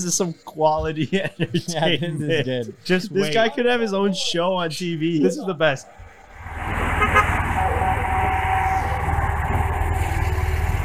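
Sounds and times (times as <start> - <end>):
speech: 0.0 - 6.0
cars racing by on highway: 0.0 - 10.8
laughter: 0.8 - 4.1
horn toot: 6.9 - 9.2.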